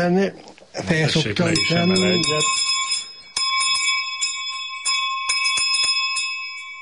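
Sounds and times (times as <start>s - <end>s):
speech: 0.0s - 2.7s
sheep bells clanging: 1.4s - 6.8s.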